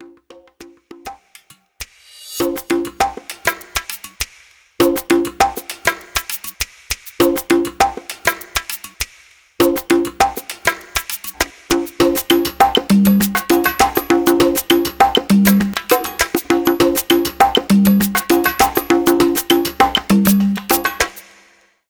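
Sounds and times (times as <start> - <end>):
percussion ringtone on a mobile phone: 2.2 - 4.2, 4.8 - 6.6, 7.2 - 8.9, 9.6 - 21.4.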